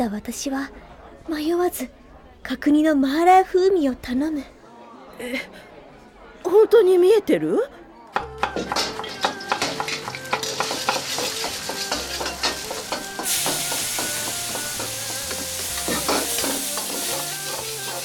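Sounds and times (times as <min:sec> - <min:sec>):
speech: 0:00.0 - 0:04.6, 0:05.2 - 0:05.7, 0:06.4 - 0:07.8
food sizzling and hissing while stir-fried in a hot wok: 0:08.7 - 0:18.0.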